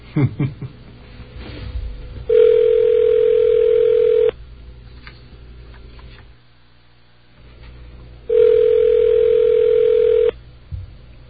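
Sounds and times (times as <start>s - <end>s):
faint hum: 0.0s - 11.2s
ringback tone of an outgoing phone call: 2.3s - 4.3s, 8.3s - 10.3s.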